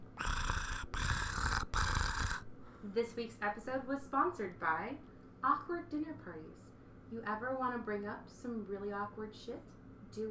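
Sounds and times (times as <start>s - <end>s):
cat purring: 0.0s - 2.4s
speech: 2.9s - 10.2s.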